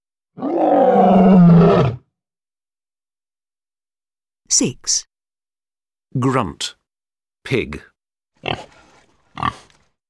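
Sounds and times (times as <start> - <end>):
speech: 0.4 - 1.9, 4.6 - 5.1, 6.1 - 6.8, 7.4 - 8.8
lion roaring: 0.4 - 2.0.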